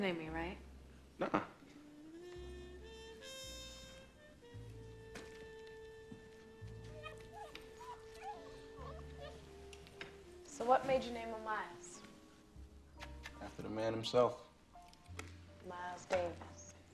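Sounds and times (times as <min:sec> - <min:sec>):
speech: 0:00.0 - 0:01.6, 0:10.6 - 0:11.8, 0:13.6 - 0:14.4, 0:15.6 - 0:16.6
musical background of sustained tones: 0:01.6 - 0:12.9
puppy whimpering and yipping: 0:06.8 - 0:10.0.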